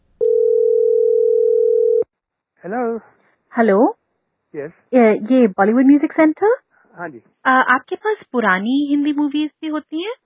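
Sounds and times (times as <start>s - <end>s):
telephone ringing tone while calling a video shop in Toronto: 0.2s - 2.1s
speech: 2.7s - 10.2s.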